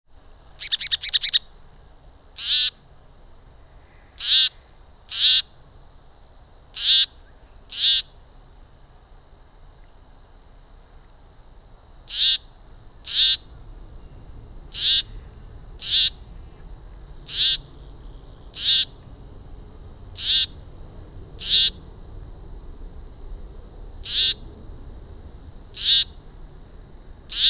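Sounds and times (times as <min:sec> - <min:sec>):
Myiagra rubecula leaden flycatcher calling: 0:00.5 - 0:01.5, 0:02.4 - 0:02.9, 0:03.8 - 0:05.6, 0:06.7 - 0:08.3, 0:12.0 - 0:22.0, 0:24.0 - 0:24.8, 0:25.7 - 0:26.3.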